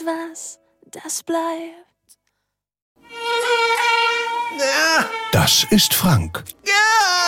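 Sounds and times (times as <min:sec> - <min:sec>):
speech: 0:00.1 - 0:01.9, 0:04.6 - 0:07.2
mosquito buzzing in a high nasal whine: 0:03.0 - 0:06.0.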